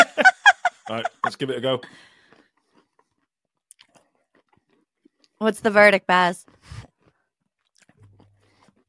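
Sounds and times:
laughter: 0:00.0 - 0:01.8
speech: 0:00.9 - 0:02.1, 0:05.4 - 0:06.9
moist chewing of peanuts soaked in full-sugar Coke: 0:02.2 - 0:05.4, 0:06.4 - 0:08.8.

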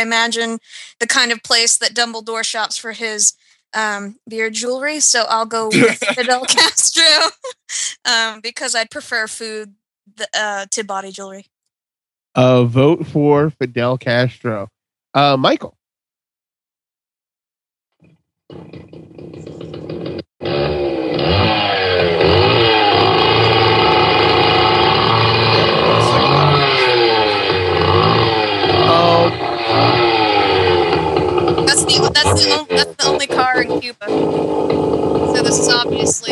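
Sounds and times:
speech: 0:00.0 - 0:11.5, 0:12.4 - 0:15.8, 0:32.3 - 0:36.3
laughter: 0:05.6 - 0:07.6, 0:12.4 - 0:14.6, 0:31.8 - 0:33.7
loud car or motorcycle engine revving: 0:18.5 - 0:36.3.

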